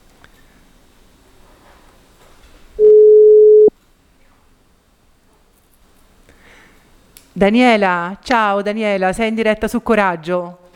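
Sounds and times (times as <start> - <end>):
telephone ringing tone as a call is placed: 2.8 - 3.7
speech: 7.4 - 10.6.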